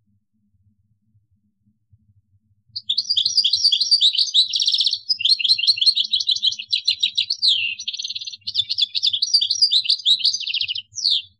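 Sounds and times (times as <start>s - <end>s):
goldfinch song: 2.8s - 11.3s.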